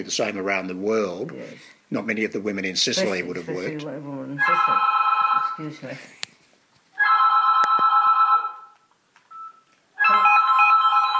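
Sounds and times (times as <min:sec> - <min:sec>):
speech: 0:00.0 - 0:06.3
electronic phone ringtone ringing: 0:04.5 - 0:05.6, 0:07.0 - 0:11.1.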